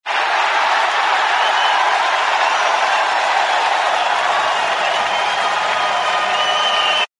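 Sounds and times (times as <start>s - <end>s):
football crowd cheering: 0.0s - 7.1s.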